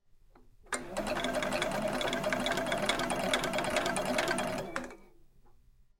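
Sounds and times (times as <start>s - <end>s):
sewing machine: 0.7s - 5.1s.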